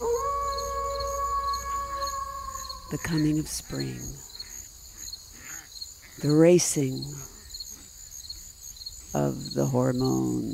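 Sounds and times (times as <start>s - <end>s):
wolf howling: 0.0s - 3.4s
speech: 2.9s - 4.3s, 6.2s - 7.4s, 9.1s - 10.5s.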